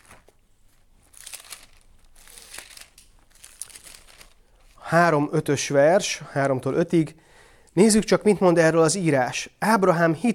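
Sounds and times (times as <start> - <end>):
thin Bible pages being flipped: 0.0 - 4.8
speech: 4.9 - 10.3.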